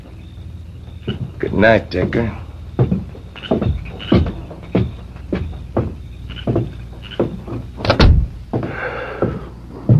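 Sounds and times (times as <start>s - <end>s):
heavy thumps: 0.9s - 9.9s
door shutting as a visitor leaves: 1.0s - 8.4s
speech: 1.4s - 2.4s.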